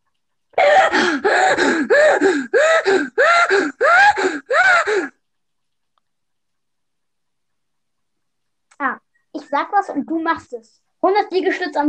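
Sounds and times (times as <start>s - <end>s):
heavy deliberate breathing: 0.6s - 5.2s
speech: 9.5s - 11.8s.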